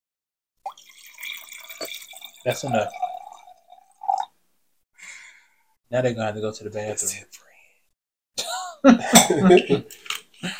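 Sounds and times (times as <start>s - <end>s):
wine pouring into a glass: 0.6s - 4.3s
speech: 2.4s - 3.0s, 5.9s - 7.5s, 8.8s - 10.5s.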